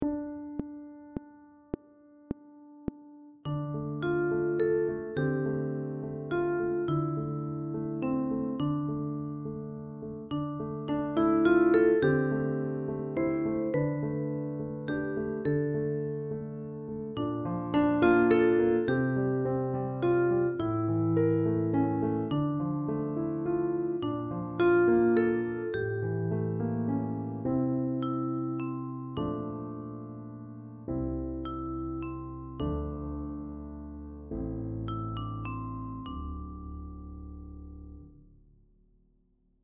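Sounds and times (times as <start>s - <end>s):
piano: 0.0s - 38.6s.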